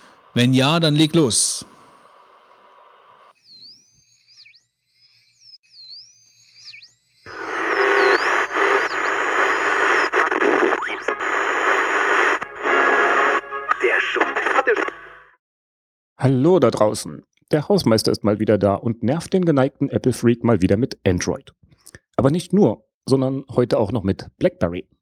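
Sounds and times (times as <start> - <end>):
loud dense radio transmission static: 0.0 - 3.3, 7.3 - 15.3
speech: 0.4 - 1.7, 16.2 - 21.6, 22.2 - 24.9
faint warbling whistles of a radio transmission: 5.9 - 12.4.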